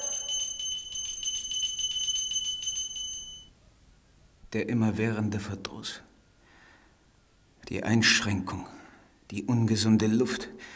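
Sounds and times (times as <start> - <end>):
small hand bell rung for a servant: 0.0 - 3.6
speech: 4.5 - 6.1, 7.7 - 10.7.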